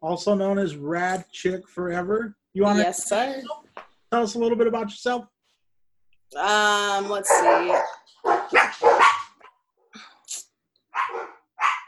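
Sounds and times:
speech: 0:00.0 - 0:05.3, 0:06.3 - 0:08.6
dogs barking and yipping: 0:07.1 - 0:09.5, 0:10.9 - 0:11.8.

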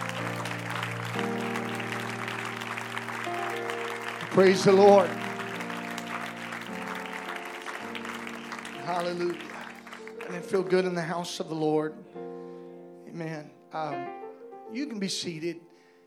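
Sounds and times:
congregation clapping: 0:00.0 - 0:11.1
sustained organ chords: 0:00.0 - 0:16.0
speech: 0:04.3 - 0:05.2, 0:09.0 - 0:09.5, 0:10.3 - 0:12.2, 0:13.2 - 0:15.7.

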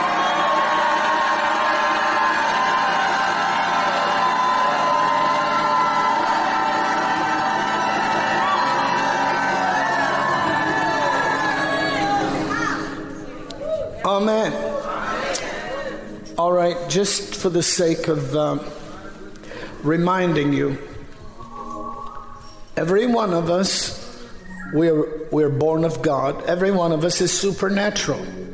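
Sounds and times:
large audience shouting and cheering: 0:00.0 - 0:16.6
speech: 0:16.9 - 0:18.8, 0:19.8 - 0:20.9, 0:22.8 - 0:24.0, 0:24.7 - 0:28.4.

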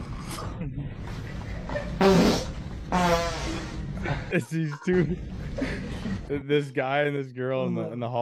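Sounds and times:
buzzy rasping farts: 0:01.9 - 0:04.0
speech: 0:02.0 - 0:02.4, 0:04.3 - 0:08.2
laughter: 0:04.0 - 0:06.4.

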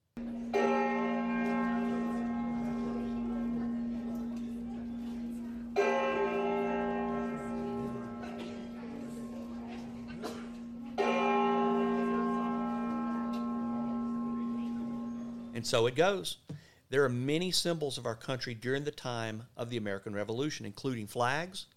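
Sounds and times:
reconstructed tolling of the cracked Liberty Bell: 0:00.2 - 0:15.6
speech: 0:15.6 - 0:21.7.

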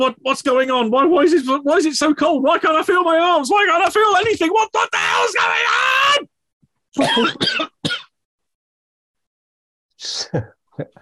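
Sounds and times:
speech: 0:00.0 - 0:06.3, 0:06.9 - 0:08.0, 0:10.0 - 0:11.0
harsh throaty coughs: 0:07.0 - 0:08.2.

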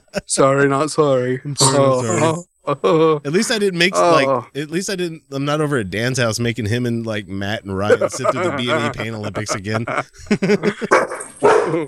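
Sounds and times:
speech: 0:00.2 - 0:11.1, 0:11.7 - 0:11.8
laughter: 0:07.8 - 0:11.8
dog barking and yelping: 0:10.9 - 0:11.8.

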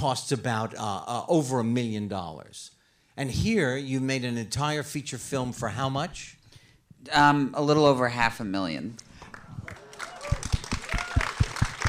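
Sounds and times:
speech: 0:00.0 - 0:06.4, 0:07.0 - 0:09.1
scattered audience applause: 0:09.3 - 0:11.8.

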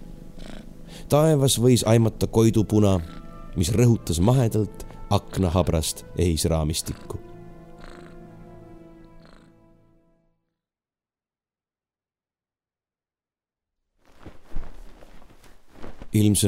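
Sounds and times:
speech: 0:01.1 - 0:07.2, 0:16.2 - 0:16.4
cat yowling: 0:02.8 - 0:03.6, 0:07.8 - 0:08.2
cat scuffling and thrashing as it struggles: 0:14.1 - 0:16.2.

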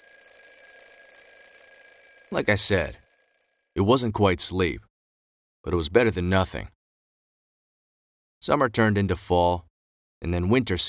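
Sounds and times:
alarm clock ringing with shrill electronic tone: 0:00.0 - 0:03.8
speech: 0:02.3 - 0:03.0, 0:03.8 - 0:04.9, 0:05.6 - 0:06.8, 0:08.4 - 0:10.8.

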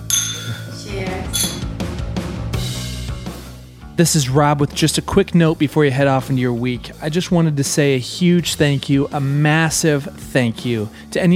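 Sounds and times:
glasses clinking together in a toast: 0:00.0 - 0:01.7
speech: 0:04.0 - 0:11.3.

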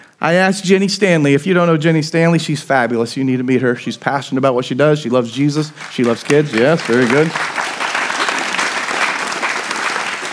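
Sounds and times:
speech: 0:00.2 - 0:07.8
church audience applause at a Sunday morning service: 0:05.6 - 0:10.3.

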